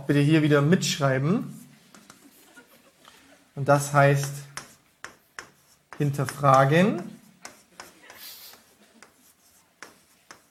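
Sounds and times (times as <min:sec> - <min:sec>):
speech: 0:00.1 - 0:01.6, 0:03.6 - 0:04.5, 0:06.0 - 0:07.2
pen scratching across paper crossing out a word: 0:04.2 - 0:10.4.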